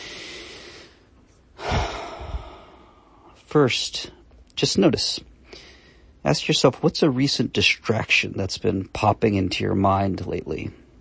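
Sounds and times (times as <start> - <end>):
deep breath during a guided relaxation exercise: 0.0 - 3.4, 5.4 - 6.2
speech: 3.5 - 5.3, 6.2 - 10.8.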